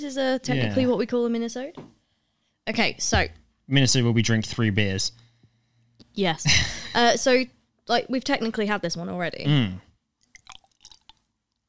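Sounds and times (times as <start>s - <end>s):
speech: 0.0s - 2.0s, 2.7s - 5.2s, 6.2s - 9.9s
thick beer being poured: 10.2s - 11.3s.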